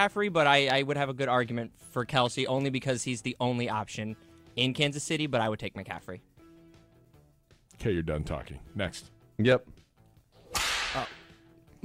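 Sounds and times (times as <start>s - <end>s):
speech: 0.0s - 6.3s, 7.8s - 9.8s, 10.9s - 11.2s
whip crack: 10.4s - 11.4s.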